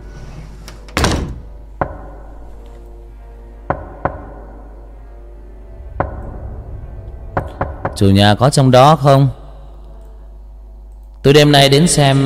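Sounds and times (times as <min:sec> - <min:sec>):
knocks on a door at night: 0:01.8 - 0:02.2, 0:03.7 - 0:04.6, 0:05.8 - 0:06.2, 0:07.4 - 0:08.0
speech: 0:08.0 - 0:09.4, 0:11.2 - 0:12.2.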